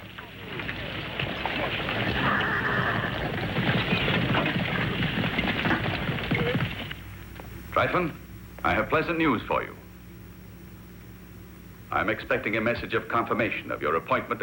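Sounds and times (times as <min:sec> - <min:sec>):
hooves of a company of horses clattering: 0:00.0 - 0:07.6
horse whinnying: 0:00.5 - 0:06.9
speech: 0:07.8 - 0:09.8, 0:11.9 - 0:14.4.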